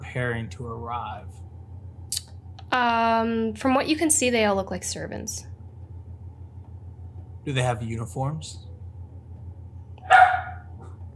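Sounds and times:
steady low hum: 0:00.0 - 0:11.1
speech: 0:00.1 - 0:01.5, 0:02.7 - 0:05.5, 0:07.4 - 0:08.7
dog giving a sharp loud bark: 0:10.0 - 0:11.0.

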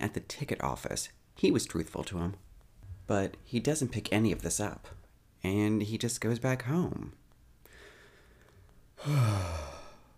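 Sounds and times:
speech: 0:00.2 - 0:02.5, 0:03.1 - 0:07.2, 0:09.0 - 0:09.7
person yawning: 0:09.0 - 0:10.1.

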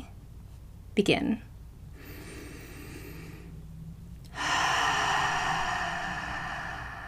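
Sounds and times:
speech: 0:01.0 - 0:01.5
deep airy breath in through the nose and out through the mouth: 0:01.9 - 0:03.6, 0:04.3 - 0:07.0.

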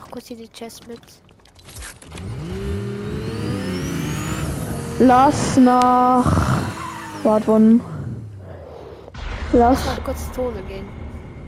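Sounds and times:
speech: 0:00.2 - 0:01.3, 0:05.0 - 0:06.6, 0:07.2 - 0:07.9, 0:09.5 - 0:11.0
video game car engine revving: 0:01.8 - 0:09.1.

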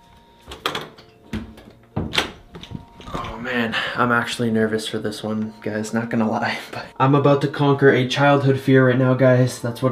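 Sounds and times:
door being closed: 0:00.5 - 0:03.4
door knocks and thuds: 0:00.6 - 0:02.9
speech: 0:03.4 - 0:09.8.

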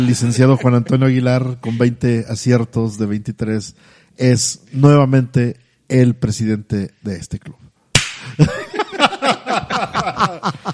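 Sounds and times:
speech: 0:00.0 - 0:07.7, 0:08.4 - 0:08.6
sharp loud slap to the face: 0:07.9 - 0:08.4
rhythmic hearty laughter: 0:08.4 - 0:10.7.

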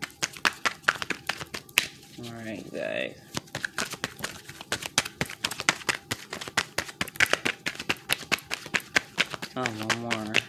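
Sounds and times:
thick deck of cards being shuffled: 0:00.0 - 0:10.4
speech: 0:02.2 - 0:03.7, 0:09.6 - 0:10.4.

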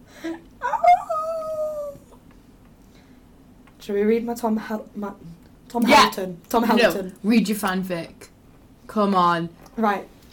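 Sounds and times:
person imitating a dog with a whining bark: 0:00.6 - 0:02.2
speech: 0:03.9 - 0:08.3, 0:08.9 - 0:10.2.

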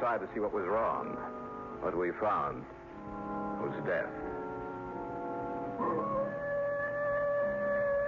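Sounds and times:
speech: 0:00.0 - 0:04.3, 0:05.8 - 0:06.0
wolf howling: 0:04.8 - 0:08.0.

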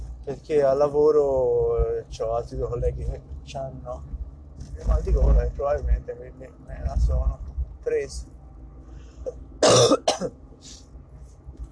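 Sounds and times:
speech: 0:00.3 - 0:04.1, 0:04.7 - 0:08.4, 0:09.2 - 0:10.8
person coughing harshly: 0:09.6 - 0:10.3.

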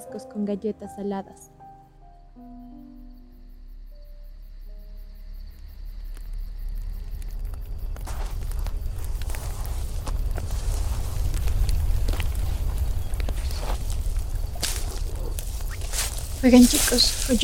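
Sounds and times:
speech: 0:00.1 - 0:01.6, 0:16.4 - 0:17.4
wind roaring at night around a campfire: 0:05.3 - 0:17.4
campfire snaps and crackles: 0:05.4 - 0:17.4.

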